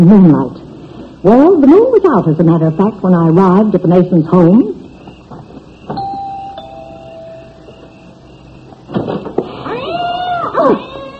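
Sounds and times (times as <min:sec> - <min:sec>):
speech: 0:00.0 - 0:00.6, 0:01.2 - 0:04.8
faint hum: 0:00.0 - 0:11.1
several cats meowing and caterwauling: 0:09.5 - 0:11.1.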